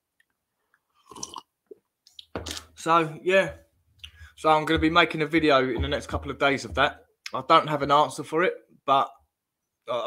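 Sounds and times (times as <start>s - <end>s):
person slurping coffee: 1.0s - 1.5s, 2.4s - 2.7s
speech: 2.8s - 3.6s, 4.4s - 9.2s, 9.9s - 10.0s
mouth clicks: 4.0s - 4.3s.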